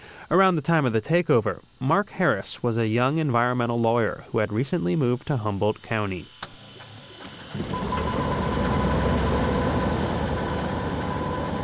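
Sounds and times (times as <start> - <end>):
speech: 0.3 - 6.4, 7.5 - 8.3
small Cessna propeller plane engine starting: 6.4 - 11.6.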